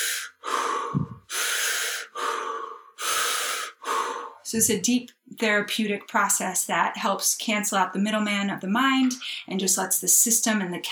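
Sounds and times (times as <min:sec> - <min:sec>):
connected breathing through the nose or mouth: 0:00.0 - 0:04.6
speech: 0:04.5 - 0:10.9.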